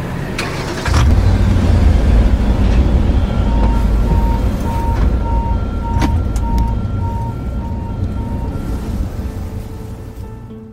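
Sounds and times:
automatic car wash machinery rumbling: 0.0 - 10.7
pulsing beeps: 3.1 - 9.0.

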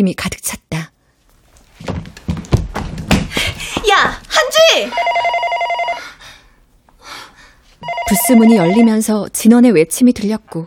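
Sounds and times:
speech: 0.0 - 0.8, 4.0 - 5.6, 8.1 - 10.6
desk telephone ringing with rapid trill: 4.9 - 6.1, 7.8 - 9.1.

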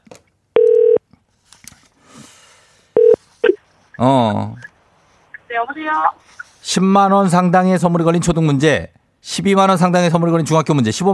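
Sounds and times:
electronic telephone tones: 0.6 - 1.0, 3.0 - 3.6
speech: 4.0 - 4.6, 5.6 - 11.1.

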